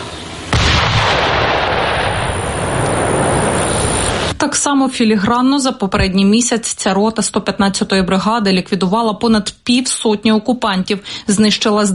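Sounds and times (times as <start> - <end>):
large bomb exploding on an enemy shelter: 0.5 - 4.4
speech: 4.5 - 11.9.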